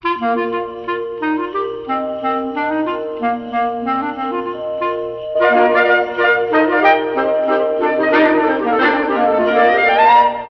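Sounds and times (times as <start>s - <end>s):
saxophone jaunty melody: 0.0s - 10.4s.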